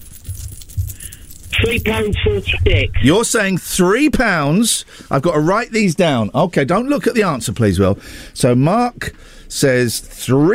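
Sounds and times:
coins jingling in a pocket: 0.0s - 2.2s
speech: 1.7s - 10.5s.

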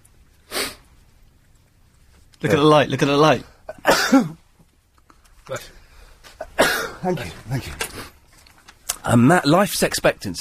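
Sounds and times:
speech: 2.4s - 4.4s, 5.5s - 5.8s, 7.0s - 8.1s, 9.0s - 10.3s
person sneezing: 6.4s - 7.0s.

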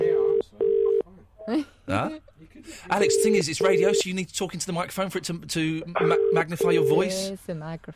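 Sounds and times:
telephone ringback tone: 0.0s - 1.0s, 3.0s - 4.0s, 6.0s - 7.2s
person speaking over a quiet telephone line: 0.0s - 1.1s, 2.9s - 4.1s, 5.8s - 7.3s
speech: 1.5s - 7.9s.

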